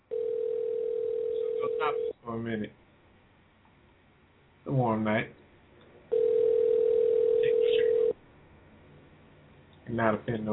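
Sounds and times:
faint noise: 0.0s - 10.5s
telephone dial tone: 0.1s - 2.1s, 6.1s - 8.2s
speech: 1.8s - 2.8s, 4.7s - 5.4s, 9.9s - 10.5s.

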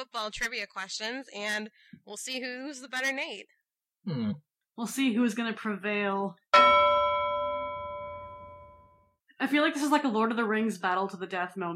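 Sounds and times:
speech: 0.0s - 6.8s, 9.4s - 11.7s
single bell struck once: 6.6s - 9.1s.

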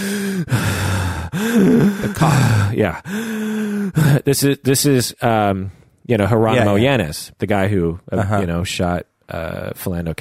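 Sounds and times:
voice imitating a police officer breathing heavily inside his car: 0.0s - 4.2s
speech: 1.6s - 10.2s.

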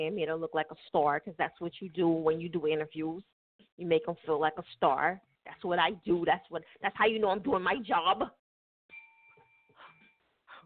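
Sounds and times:
speech: 0.0s - 8.4s
hand bell ringing while shaken: 8.9s - 10.3s.

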